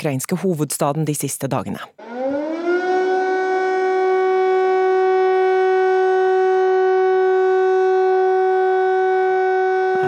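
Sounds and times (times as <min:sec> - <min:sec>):
speech: 0:00.0 - 0:02.1
air raid siren wailing: 0:02.0 - 0:10.0.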